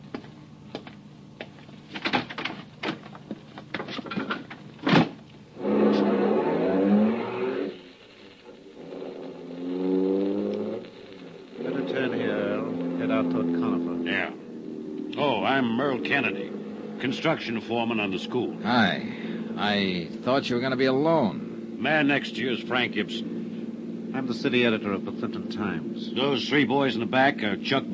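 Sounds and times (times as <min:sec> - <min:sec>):
clicks and rattles: 0:01.9 - 0:05.0
car driving up: 0:05.6 - 0:07.8, 0:08.8 - 0:27.9
speech: 0:15.6 - 0:16.4, 0:17.0 - 0:23.2, 0:24.2 - 0:27.9.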